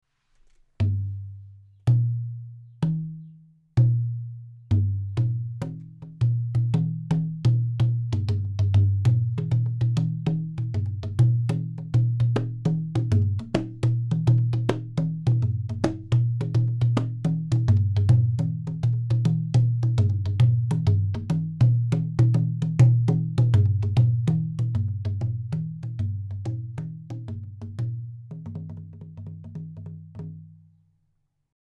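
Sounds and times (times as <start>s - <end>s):
bass drum set sound example: 0.8s - 3.2s, 3.8s - 30.4s.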